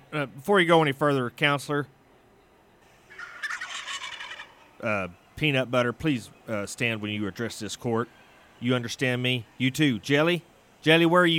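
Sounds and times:
speech: 0.1 - 2.0, 4.8 - 11.3
white tom turkey gobbling: 3.0 - 4.9.

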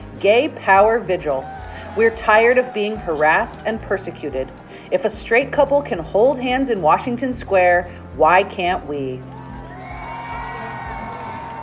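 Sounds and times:
speech: 0.2 - 9.4
crowd cheering and whooping: 1.1 - 4.6, 9.3 - 11.6.

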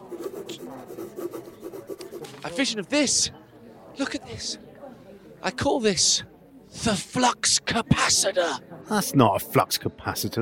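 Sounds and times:
pen or pencil scribbling a drawing on paper: 0.0 - 2.6
speech: 2.4 - 3.4, 4.0 - 4.7, 5.4 - 10.3.

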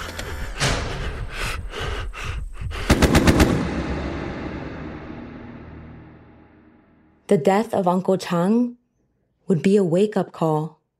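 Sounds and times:
anti-aircraft gun firing at a military training area: 2.9 - 4.7
speech: 7.3 - 8.8, 9.5 - 10.8.

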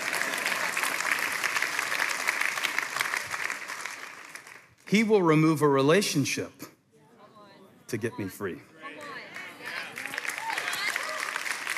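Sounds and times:
large church audience clapping and applauding: 0.0 - 4.8, 9.0 - 11.7
speech: 4.9 - 6.6, 7.9 - 8.7.

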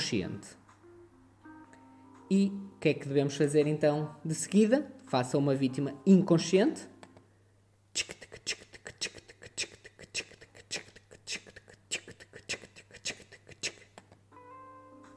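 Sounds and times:
speech: 0.1 - 0.6, 2.3 - 6.9, 8.0 - 8.5
voice imitating a ticking clock with mouth clicks: 8.0 - 14.3.

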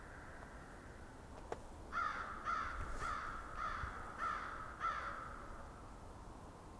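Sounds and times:
flock of crows cawing muffled: 0.0 - 1.0, 1.9 - 5.8.

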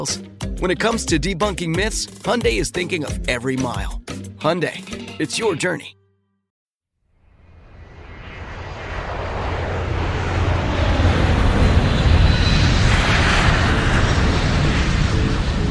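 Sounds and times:
speech: 0.0 - 6.0
jet engine roar inside a private jet cabin: 7.3 - 15.7.

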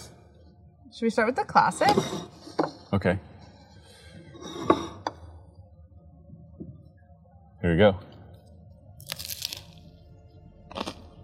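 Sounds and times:
speech: 0.9 - 3.3, 7.8 - 8.1
crunchy bite into a crisp BLT sandwich: 9.0 - 9.9, 10.7 - 11.2.

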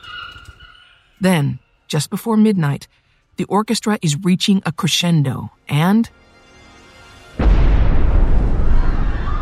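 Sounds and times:
speech: 1.2 - 6.2
bomb explosion: 7.4 - 9.4.

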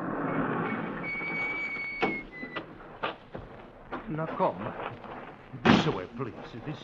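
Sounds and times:
small side door sliding along its track with a metallic squeal: 0.0 - 2.7
speech: 4.1 - 5.0, 5.6 - 6.8.

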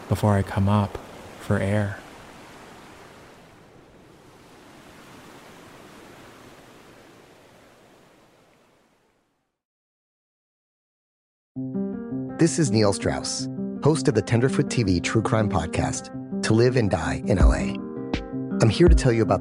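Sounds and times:
cold rushing creek water: 0.0 - 9.0
speech: 0.1 - 2.0, 12.4 - 17.8, 18.6 - 19.3.

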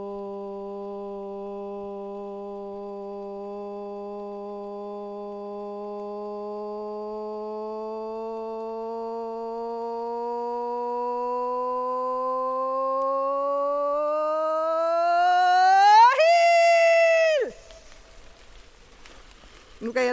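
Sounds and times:
loud sustained ritual invocation shout: 7.3 - 18.0
faint rustling: 17.5 - 20.1.

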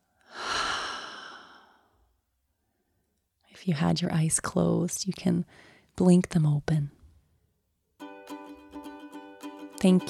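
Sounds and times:
deep breath in through the nose and out through the mouth: 0.0 - 3.1, 5.5 - 5.9
speech: 3.6 - 7.0, 9.8 - 10.0.

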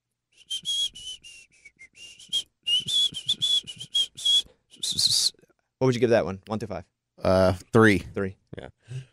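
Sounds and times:
person whistling in short breathy bursts: 0.3 - 5.4
speech: 5.8 - 9.0.

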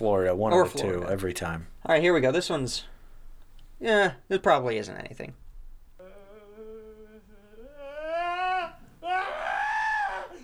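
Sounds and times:
speech: 0.0 - 2.9, 3.8 - 5.4
person screaming in a played recording: 6.0 - 10.4.

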